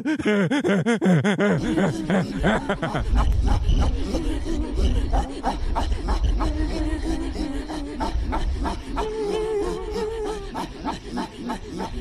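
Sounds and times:
Inuit singing with raspy breathy vocal pulses over a throaty drone: 0.0s - 11.9s
laughter: 0.0s - 11.9s.

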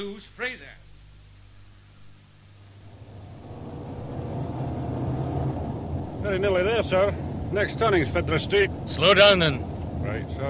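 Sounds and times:
speech: 0.0s - 0.8s, 6.3s - 10.4s
police car engine humming while driving: 2.4s - 10.4s.

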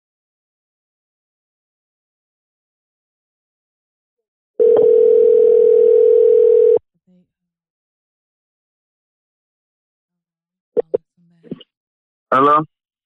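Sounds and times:
telephone dial tone while placing a call: 4.6s - 6.8s
speech: 12.3s - 12.7s.

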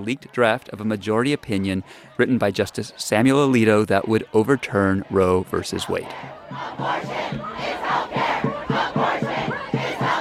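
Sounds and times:
speech: 0.0s - 8.8s
protest crowd noise in open space: 0.0s - 10.1s
large protest crowd chanting in unison outside the US Supreme Court: 2.9s - 10.1s
protesters shouting: 4.0s - 10.1s.

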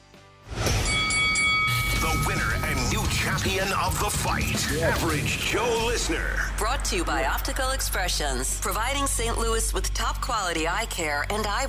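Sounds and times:
bell rung to mark the winner of a number-guessing contest: 0.7s - 2.8s
speech: 2.1s - 11.6s.

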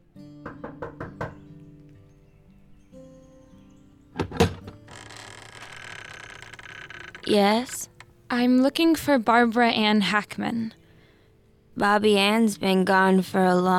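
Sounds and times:
knocking on a door: 0.4s - 1.4s
door thud: 4.2s - 4.8s
door creaking as an elderly woman opens it: 4.2s - 8.0s
speech: 7.3s - 10.8s, 11.8s - 13.7s.

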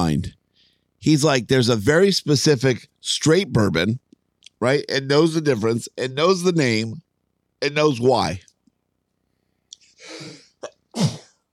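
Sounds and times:
speech: 0.0s - 0.4s, 1.0s - 4.0s, 4.6s - 7.0s, 7.6s - 8.5s, 11.0s - 11.2s
sharp intake of breath: 9.3s - 11.2s
loud sneeze in a sneezing fit: 10.9s - 11.4s.

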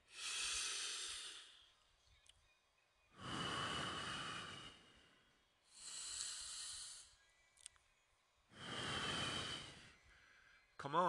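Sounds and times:
slow deep breathing: 0.0s - 1.8s, 3.1s - 7.5s, 8.5s - 10.8s.

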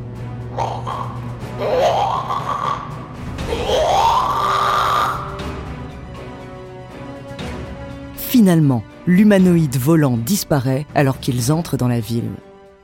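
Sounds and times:
creature's hoarse rising squeaking cries: 0.5s - 5.4s
speech: 8.4s - 12.5s.

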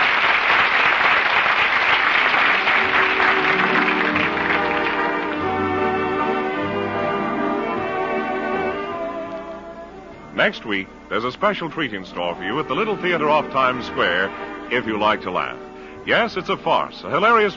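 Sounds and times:
large theater audience applauding after final curtain: 0.0s - 5.8s
music: 0.0s - 17.5s
speech: 10.4s - 17.5s.

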